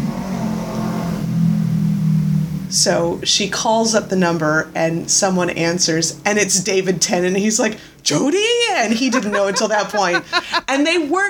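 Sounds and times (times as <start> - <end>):
car engine revving outside: 0.0 - 6.6
speech: 2.8 - 11.2
laughter: 8.8 - 10.7.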